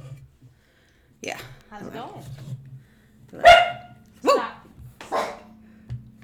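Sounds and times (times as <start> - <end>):
dog barking in shrill high-pitched yaps: 3.4 - 5.5.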